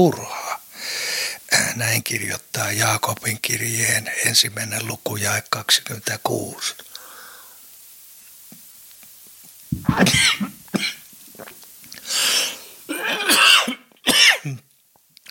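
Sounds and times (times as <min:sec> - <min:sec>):
speech: 0:00.0 - 0:00.3, 0:01.8 - 0:06.9, 0:09.7 - 0:10.9
person coughing from choking on swallowed water: 0:09.7 - 0:11.0, 0:12.9 - 0:14.6.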